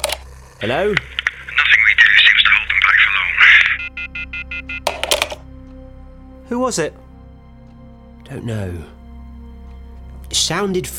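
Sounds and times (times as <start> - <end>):
speech: 0.6 - 1.2, 6.5 - 7.0, 8.3 - 9.0, 10.3 - 10.9
electronic telephone ringing: 0.6 - 5.5.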